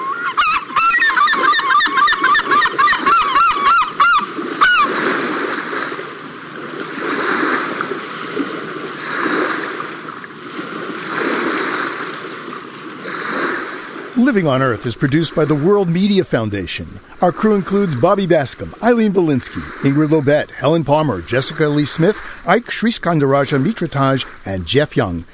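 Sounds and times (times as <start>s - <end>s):
bathing herring gull giving loud honking calls: 0.0s - 5.2s
splashing and churning water from a bathing herring gull: 0.0s - 25.3s
speech: 14.3s - 25.3s.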